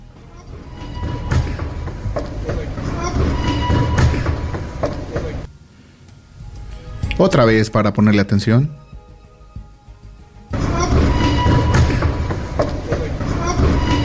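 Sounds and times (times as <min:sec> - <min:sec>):
metro train rumbling in a subway station: 0:00.0 - 0:05.6, 0:10.2 - 0:14.0
speech: 0:07.2 - 0:08.8.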